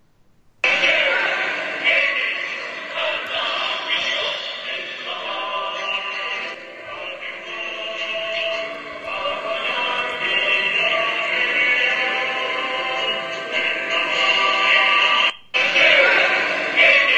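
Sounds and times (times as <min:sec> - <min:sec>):
football club anthem blaring from balconies: 0:00.6 - 0:17.1.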